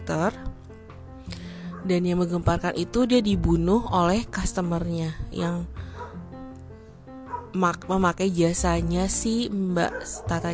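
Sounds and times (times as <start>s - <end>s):
speech: 0.1s - 0.5s, 1.8s - 5.8s, 7.6s - 10.5s
neighbour's dog barking and yelping downstairs through an open window: 1.7s - 2.0s, 6.0s - 6.2s, 7.3s - 7.6s, 9.8s - 10.5s.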